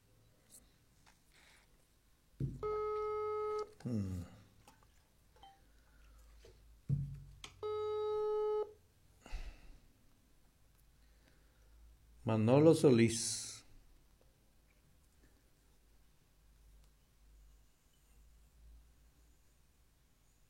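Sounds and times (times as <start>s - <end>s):
faint noise: 0.0s - 20.4s
electronic telephone ring tones of an unanswered call: 2.6s - 3.7s, 7.6s - 8.7s
speech: 3.8s - 4.4s, 12.3s - 13.4s.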